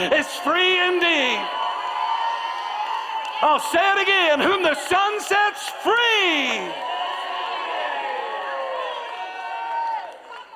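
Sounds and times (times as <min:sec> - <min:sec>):
speech: 0:00.0 - 0:01.6, 0:03.4 - 0:06.9
large audience at a church service shouting and cheering: 0:00.0 - 0:10.5.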